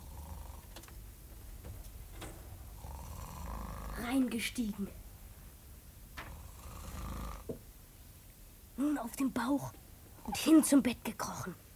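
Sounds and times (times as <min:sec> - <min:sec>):
man snoring in his sleep: 0:00.0 - 0:00.8, 0:02.8 - 0:04.1, 0:06.3 - 0:07.6
speech: 0:04.1 - 0:05.0, 0:09.1 - 0:11.6.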